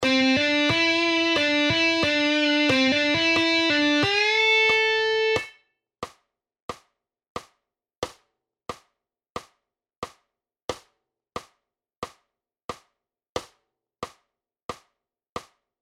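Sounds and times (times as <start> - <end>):
guitar playing triplets: 0.0 - 5.6.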